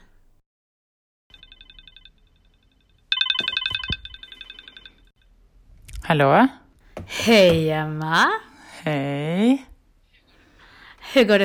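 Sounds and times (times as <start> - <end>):
outgoing phone call electronic ringback tone: 3.1 - 5.0
speech: 6.1 - 9.7, 11.1 - 11.4.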